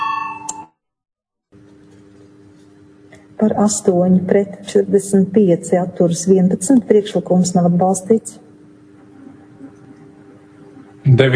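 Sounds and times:
parliament voting bell ringing: 0.0s - 0.7s
speech: 3.4s - 8.5s, 11.2s - 11.3s
low steady noise: 4.9s - 11.3s.

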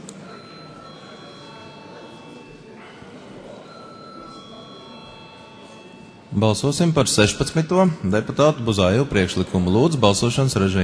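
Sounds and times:
faint murmur of a large room: 0.0s - 10.8s
parliament voting call bell ringing: 0.1s - 10.8s
speech: 6.3s - 10.8s.

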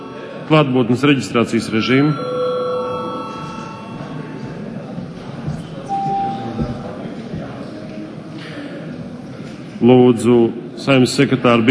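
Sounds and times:
electronic bell tone for a break in a parliamentary session: 0.0s - 4.9s, 5.9s - 6.9s
murmur: 0.0s - 11.6s
speech: 0.5s - 2.3s, 9.8s - 11.6s.

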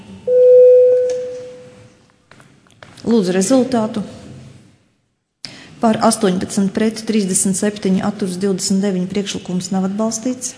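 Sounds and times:
parliament chamber bell calling members to vote: 0.3s - 1.8s
speech: 3.1s - 4.2s, 5.8s - 10.5s.

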